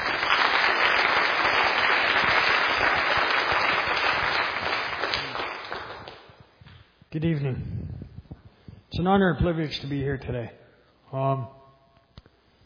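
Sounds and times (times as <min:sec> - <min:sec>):
applause from a sizable audience: 0:00.0 - 0:06.3
speech: 0:07.2 - 0:07.8, 0:09.0 - 0:11.6.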